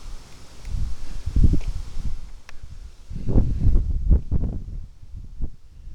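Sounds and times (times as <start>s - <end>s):
strong wind gusts: 0.0s - 5.9s.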